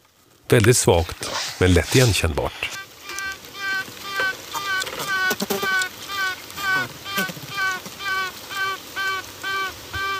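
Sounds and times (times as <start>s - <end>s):
soft hiss: 0.0s - 10.1s
speech: 0.5s - 2.8s
queen bee piping before emerging: 1.2s - 10.1s
faint hive buzz: 2.7s - 10.1s.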